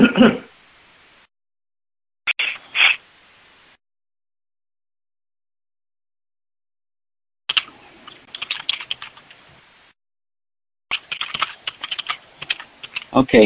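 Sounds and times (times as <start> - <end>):
speech: 0.2 - 0.5, 13.2 - 13.4
typing on a computer keyboard: 7.5 - 9.4, 10.9 - 13.1.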